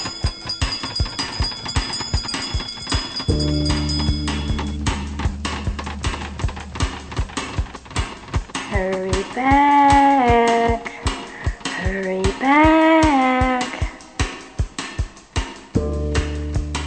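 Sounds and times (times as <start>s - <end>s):
bell ringing: 0.0s - 5.1s
steady rhythmic ticking and clopping: 0.0s - 15.8s.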